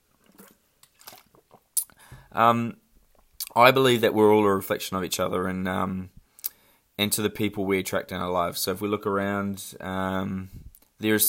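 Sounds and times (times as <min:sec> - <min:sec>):
person sipping a drink: 0:00.1 - 0:02.2
speech: 0:02.3 - 0:02.8, 0:03.6 - 0:06.2, 0:07.0 - 0:11.2.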